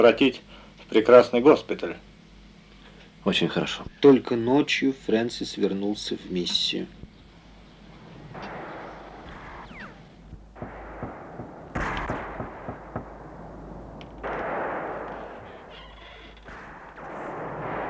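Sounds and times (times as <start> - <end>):
speech: 0.0 - 2.1, 3.2 - 7.0
hissing rumbling noise: 0.0 - 17.8
gunfire: 8.0 - 17.8.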